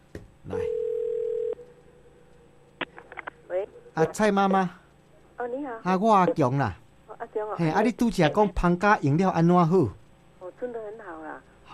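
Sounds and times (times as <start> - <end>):
telephone dial tone: 0.7 - 1.6
speech: 4.0 - 4.8, 5.7 - 6.8, 7.5 - 10.0.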